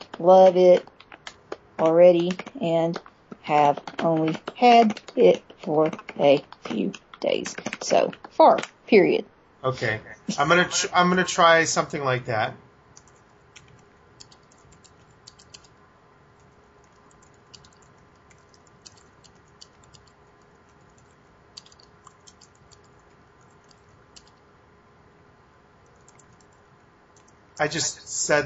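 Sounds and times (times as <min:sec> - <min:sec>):
typing on a wireless computer keyboard with a split space bar: 0:00.0 - 0:08.8, 0:13.0 - 0:15.8, 0:16.4 - 0:24.4, 0:25.8 - 0:26.6, 0:27.2 - 0:27.4
faint electrical hum: 0:00.0 - 0:28.4
speech: 0:00.2 - 0:00.9, 0:01.8 - 0:12.6, 0:27.6 - 0:28.4.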